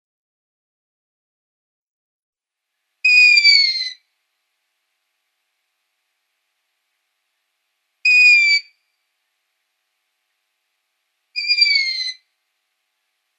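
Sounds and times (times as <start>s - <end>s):
downy long-eared owl young making squeaky falling notes: 3.1s - 4.0s, 8.1s - 8.7s, 11.4s - 12.2s.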